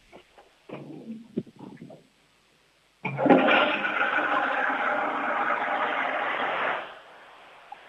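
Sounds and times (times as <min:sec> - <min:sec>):
toilet flushing: 0:03.0 - 0:07.8.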